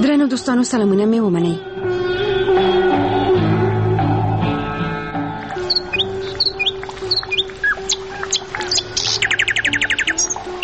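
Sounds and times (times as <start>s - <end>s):
sustained steady tonal background: 0.1s - 10.6s
speech: 0.2s - 1.7s
birds chirping and singing in high tweets and trills: 5.5s - 10.6s.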